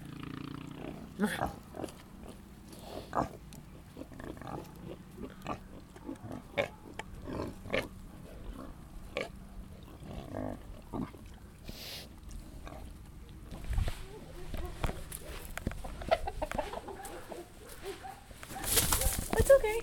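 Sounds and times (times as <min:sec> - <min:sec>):
quiet farmyard background: 0:00.0 - 0:19.8
pig grunting: 0:00.4 - 0:13.6
fence creaking and scraping from a pig rubbing its rear: 0:13.6 - 0:19.8.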